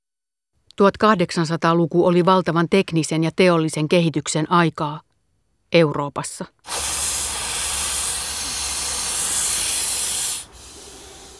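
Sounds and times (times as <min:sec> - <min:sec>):
speech: 0:00.8 - 0:05.1, 0:05.7 - 0:07.0
steam hissing from an engine: 0:06.7 - 0:11.3.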